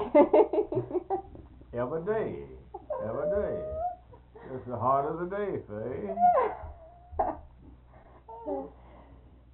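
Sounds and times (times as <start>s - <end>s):
speech: 0.1s - 0.6s, 1.8s - 3.3s, 4.7s - 7.4s
dog whimpering: 2.8s - 4.3s, 6.0s - 7.5s, 8.2s - 8.8s.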